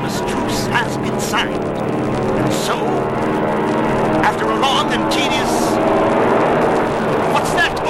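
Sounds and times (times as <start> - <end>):
airplanes taking off from an airfield with engines roaring: 0.0 - 7.8.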